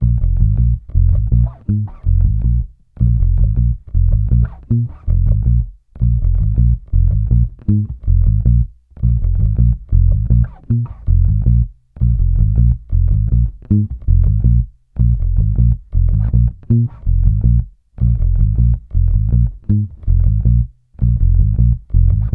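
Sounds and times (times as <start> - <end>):
electric bass loop in B flat minor: 0.0 - 22.3.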